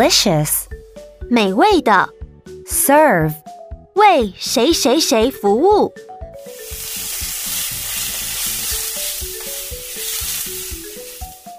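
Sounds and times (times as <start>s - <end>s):
speech: 0.0s - 0.7s, 1.3s - 6.0s
rice being stir-fried in a wok: 6.4s - 11.5s.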